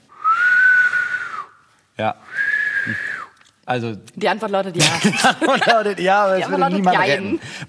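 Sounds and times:
finger whistling: 0.1s - 1.7s, 2.3s - 3.4s
speech: 2.0s - 3.1s, 3.7s - 7.6s
laughter: 4.8s - 7.3s.

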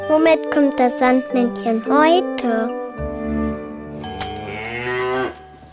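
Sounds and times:
speech: 0.3s - 2.8s
cow mooing: 4.1s - 5.5s.

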